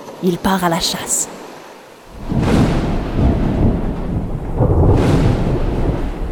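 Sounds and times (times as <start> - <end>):
speech: 0.2 - 1.4
deep rolling thunder in a fierce midday storm: 2.1 - 6.3.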